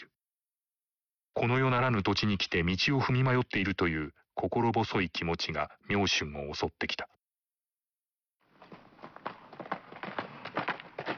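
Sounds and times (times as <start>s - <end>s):
speech: 1.4s - 7.2s
hoofbeats of a single ridden horse: 8.5s - 11.1s.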